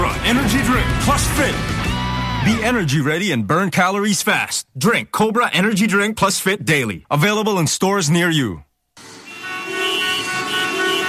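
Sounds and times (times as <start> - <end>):
speech: 0.3 - 9.1
car horns honking in traffic: 9.0 - 11.0.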